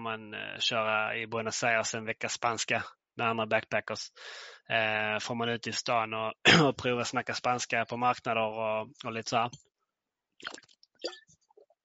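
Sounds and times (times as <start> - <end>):
speech: 0.0 - 9.7, 10.4 - 11.2
person sipping water with wet slurping: 10.4 - 11.2.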